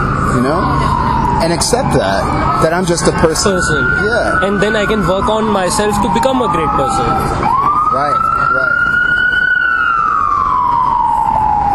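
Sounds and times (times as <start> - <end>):
ambulance siren wailing as vehicle passes: 0.0 - 11.7
constant rumble of traffic noise: 0.0 - 11.7
speech: 0.4 - 8.3.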